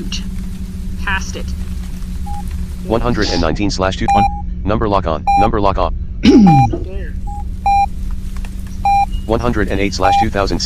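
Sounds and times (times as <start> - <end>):
steady low hum: 0.0 - 10.6
speech: 1.1 - 1.7, 2.4 - 7.2, 9.3 - 10.6
short electronic phone keypad beeps: 4.1 - 4.4, 6.5 - 6.7, 8.8 - 9.1.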